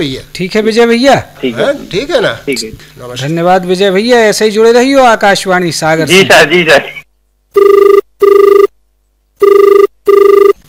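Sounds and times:
speech: 0.0s - 7.8s
telephone ringing for an incoming call to a radio phone-in: 7.6s - 8.7s, 9.4s - 10.6s.

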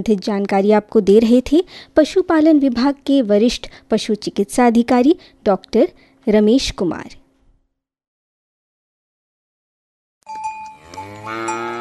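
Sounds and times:
speech: 0.0s - 7.2s
dairy cow mooing: 10.8s - 11.8s.

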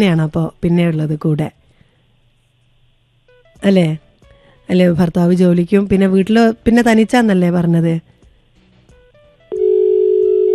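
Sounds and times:
speech: 0.0s - 1.6s, 3.6s - 4.0s, 4.7s - 8.1s
telephone dial tone after a call is cut off: 9.5s - 10.5s.

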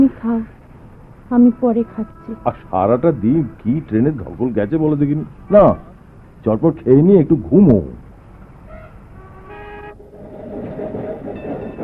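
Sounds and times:
speech: 0.0s - 0.6s, 1.3s - 8.0s
tram passing along a street, rolling rumble: 0.0s - 11.8s
tram horn toots: 1.3s - 4.8s, 8.6s - 11.8s.

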